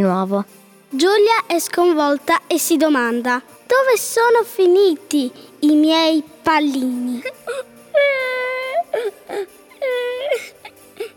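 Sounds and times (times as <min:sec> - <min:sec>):
speech: 0:00.0 - 0:07.7
girl crying in long drawn-out wails: 0:07.2 - 0:11.1.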